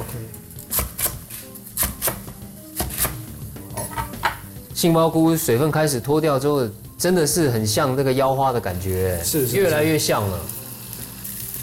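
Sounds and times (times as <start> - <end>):
knife slicing Chinese cabbage on a cutting board: 0.7 - 3.2
speech: 4.8 - 10.6.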